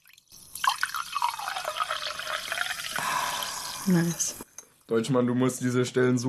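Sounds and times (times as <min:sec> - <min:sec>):
woman pouring water into a glass: 0:00.0 - 0:04.4
speech: 0:03.9 - 0:06.2.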